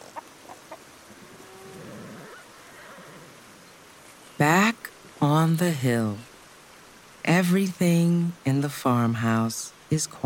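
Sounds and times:
rooster-like crows across a valley: 1.2s - 3.4s
horse whinny: 1.4s - 3.4s
speech: 4.4s - 6.3s, 7.3s - 10.2s.

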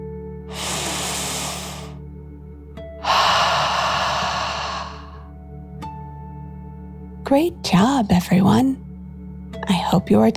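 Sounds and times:
deep breathing in and out during a children's meditation: 0.5s - 2.0s, 3.0s - 5.3s
speech: 7.3s - 8.9s, 9.7s - 10.3s.

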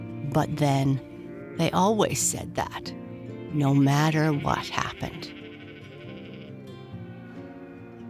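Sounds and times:
speech: 0.4s - 5.4s
sheep bleating: 0.9s - 2.1s, 3.2s - 8.0s.

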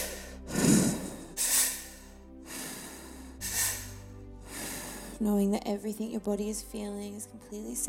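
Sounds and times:
deep mouth breathing during a guided breathing exercise: 0.0s - 5.2s
speech: 5.2s - 7.8s.

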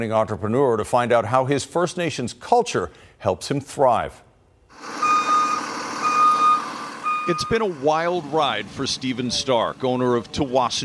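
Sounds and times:
speech: 0.0s - 5.0s, 7.2s - 10.8s
school bus low rumble: 4.7s - 10.8s
school bus reversing beeps: 5.0s - 7.7s.

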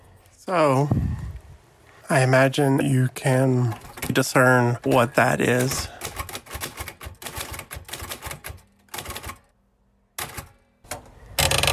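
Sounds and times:
speech: 0.5s - 1.1s, 2.1s - 6.0s
old Royal typewriter carriage return rush: 3.7s - 9.5s, 10.2s - 11.7s
keystrokes on an old Royal typewriter clattering: 3.8s - 9.5s, 11.4s - 11.7s.

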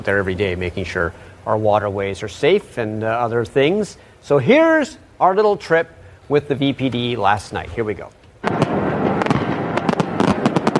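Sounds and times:
speech: 0.0s - 8.7s
fireworks exploding: 8.4s - 10.7s.

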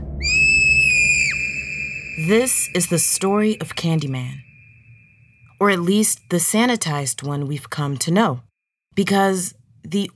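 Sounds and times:
girl screaming: 0.2s - 3.3s
speech: 2.2s - 4.5s, 5.6s - 10.1s.

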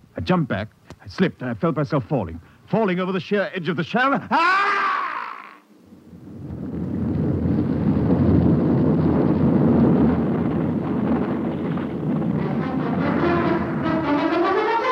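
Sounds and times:
speech: 0.2s - 4.8s
avalanche of loosened snow thundering down a steep snowy slope: 6.1s - 14.8s.

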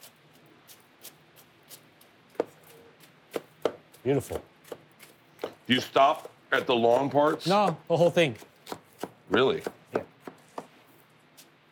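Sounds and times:
knife chopping green onions into thin slices on a board: 1.7s - 10.8s
speech: 4.0s - 4.5s, 5.7s - 8.5s, 9.3s - 9.8s.

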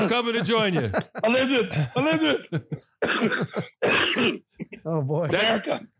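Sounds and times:
laughter: 0.0s - 3.8s
speech: 0.0s - 5.9s
person coughing: 3.0s - 5.9s.

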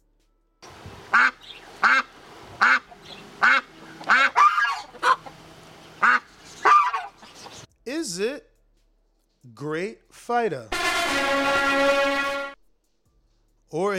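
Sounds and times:
duck quacking sound effect: 1.1s - 5.4s, 6.0s - 7.6s
speech: 9.6s - 11.9s, 13.7s - 13.9s.

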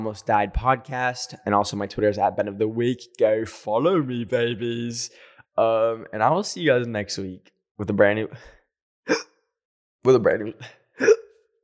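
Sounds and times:
speech: 0.0s - 9.3s, 10.0s - 11.2s
person hiccuping after eating a quesadilla: 9.1s - 9.3s, 11.0s - 11.4s.

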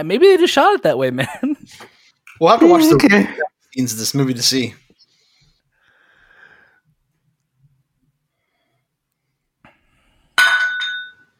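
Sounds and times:
speech: 0.0s - 4.8s
glasses clinking in a toast: 10.4s - 11.3s.

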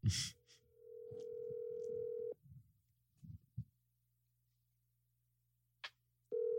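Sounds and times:
outgoing telephone call ringback tone: 0.8s - 2.4s, 6.3s - 6.5s.

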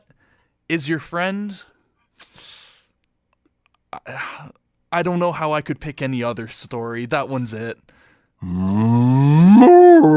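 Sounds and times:
speech: 0.7s - 1.7s, 4.0s - 10.1s
person imitating a cow's drawn-out moo: 8.4s - 10.1s.

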